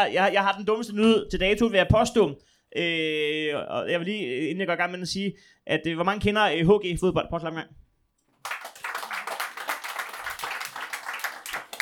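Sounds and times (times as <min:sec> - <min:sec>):
speech: 0:00.0 - 0:07.8
audience applause: 0:08.4 - 0:11.8.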